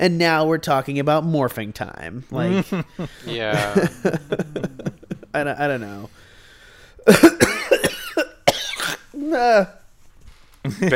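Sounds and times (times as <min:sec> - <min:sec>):
speech: 0:00.0 - 0:06.2, 0:07.0 - 0:07.4, 0:09.2 - 0:09.8, 0:10.6 - 0:10.9
laughter: 0:02.4 - 0:05.4, 0:10.6 - 0:10.9
harsh hacking coughs: 0:07.0 - 0:09.2.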